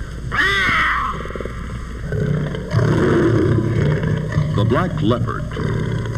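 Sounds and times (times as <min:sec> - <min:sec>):
puma shrill wavering cry: 0:00.3 - 0:06.1
puma low rapid purring: 0:01.2 - 0:06.1
speech: 0:04.6 - 0:05.8.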